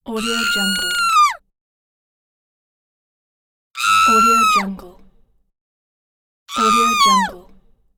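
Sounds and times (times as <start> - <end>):
witch screaming: 0.1 - 1.4, 3.8 - 4.7, 6.5 - 7.3.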